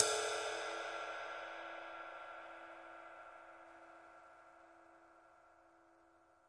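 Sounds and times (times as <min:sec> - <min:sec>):
big ride cymbal single hits: 0:00.0 - 0:02.6.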